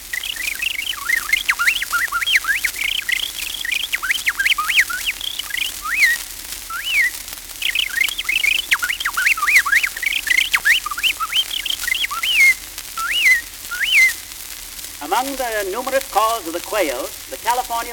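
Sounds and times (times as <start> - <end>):
bobolink singing: 0.1 - 14.1, 15.0 - 17.9
speech: 15.2 - 17.9.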